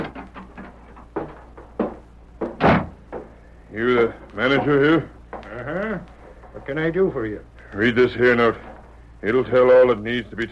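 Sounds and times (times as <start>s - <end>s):
door of a stage office opening: 0.0s - 3.2s
soft knocks and shuffles: 0.0s - 6.8s
door closing with a solid thump: 2.4s - 3.2s
speech: 3.8s - 10.5s.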